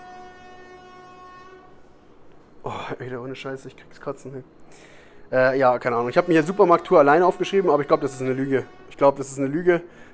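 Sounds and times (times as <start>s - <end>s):
horn honking outside: 0.0s - 2.2s, 5.4s - 10.1s
speech: 2.7s - 10.1s.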